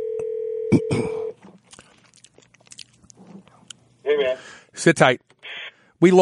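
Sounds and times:
steady telephone dial tone: 0:00.0 - 0:00.8
quiet rustling: 0:01.4 - 0:03.8
speech: 0:04.1 - 0:05.3, 0:06.0 - 0:06.2.

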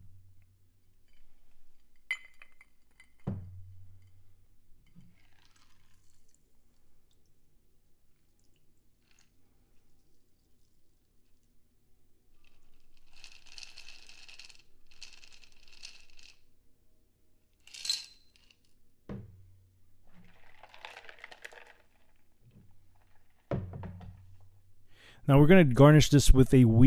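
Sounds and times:
metal clinking and knocking on glass: 0:02.1 - 0:03.2
cocktail liquid trickling and dripping into a glass while double strained: 0:05.0 - 0:11.5
speech: 0:25.3 - 0:26.8.

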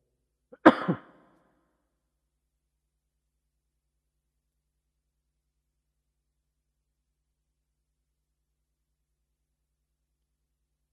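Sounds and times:
harsh cough: 0:00.6 - 0:01.2
rasping throat clear: 0:00.6 - 0:01.2.

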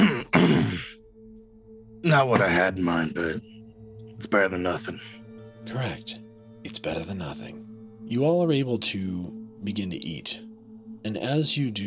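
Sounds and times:
person giving a small throaty cough after drinking: 0:00.0 - 0:01.0
speech: 0:02.1 - 0:03.5, 0:04.2 - 0:11.8.

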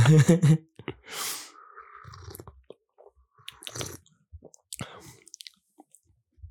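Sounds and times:
slurping a hot drink from a mug: 0:01.2 - 0:04.1.

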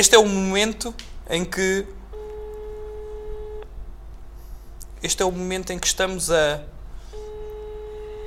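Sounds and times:
speech: 0:00.0 - 0:02.0, 0:05.0 - 0:06.8
low hum: 0:00.0 - 0:08.2
telephone line tone during a phone call: 0:02.1 - 0:03.7, 0:07.1 - 0:08.2.

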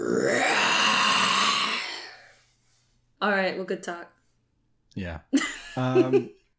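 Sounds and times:
person imitating a roar in a deep gravelly voice: 0:00.0 - 0:02.4
speech: 0:03.2 - 0:04.2, 0:05.0 - 0:06.4
laughter: 0:05.4 - 0:06.4.

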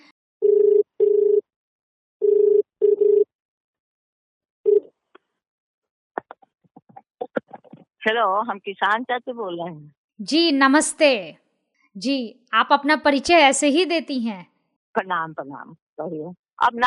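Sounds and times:
phone ringback tone in paired bursts: 0:00.4 - 0:01.4, 0:02.2 - 0:03.3
speech: 0:08.0 - 0:11.4, 0:12.0 - 0:16.8.

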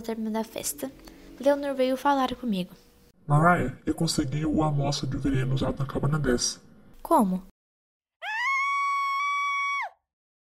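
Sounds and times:
speech: 0:00.0 - 0:07.5
woman screaming high-pitched: 0:08.2 - 0:10.1.

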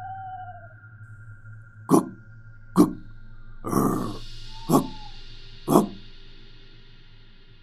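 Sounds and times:
fierce dog barking: 0:01.9 - 0:02.2, 0:03.7 - 0:06.0.

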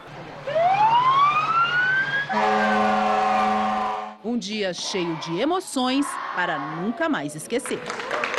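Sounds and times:
fire truck siren wailing: 0:00.4 - 0:04.2
steady loud horn-like blare: 0:02.3 - 0:04.2
speech: 0:04.4 - 0:08.2.

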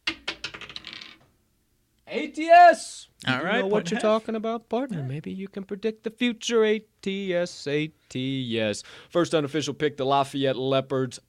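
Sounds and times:
die clattering onto a hard surface: 0:00.0 - 0:01.3
speech: 0:02.1 - 0:11.2.

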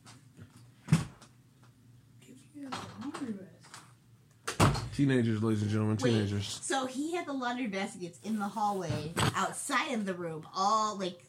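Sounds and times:
door shutting with a solid thud: 0:00.9 - 0:01.2, 0:04.5 - 0:05.0
speech: 0:05.0 - 0:11.2.

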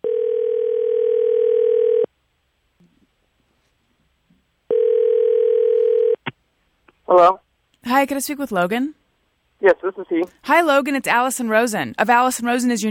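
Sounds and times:
telephone dial tone: 0:00.0 - 0:02.1, 0:04.7 - 0:06.2
speech: 0:07.1 - 0:07.4, 0:08.0 - 0:09.0, 0:09.6 - 0:12.8.

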